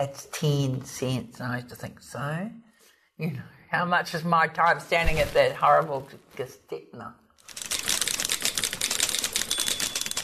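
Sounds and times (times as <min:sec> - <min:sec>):
speech: 0:00.0 - 0:02.6, 0:03.2 - 0:07.2
typewriter keys clacking: 0:07.5 - 0:10.2.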